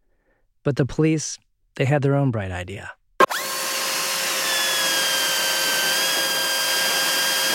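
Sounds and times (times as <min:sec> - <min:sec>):
speech: 0:00.6 - 0:03.0
power drill whining: 0:03.2 - 0:07.5.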